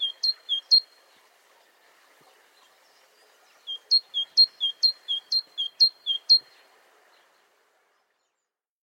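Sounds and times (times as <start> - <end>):
great tit Parus major singing: 0.0 - 1.0, 3.5 - 6.6.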